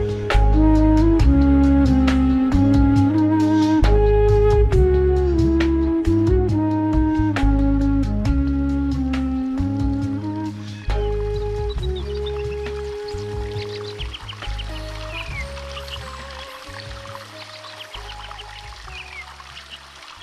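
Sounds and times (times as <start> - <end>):
low tonal hum: 0.0 - 20.0
flowing river: 10.3 - 20.2
small birds chirping outdoors in nature: 10.4 - 20.2.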